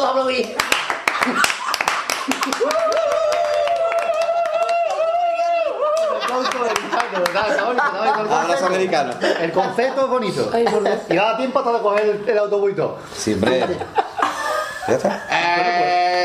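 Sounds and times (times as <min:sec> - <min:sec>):
speech: 0:00.0 - 0:01.6, 0:07.2 - 0:14.0, 0:14.9 - 0:15.6
group applauding: 0:00.3 - 0:09.3
laughter: 0:01.2 - 0:12.2, 0:13.2 - 0:16.2.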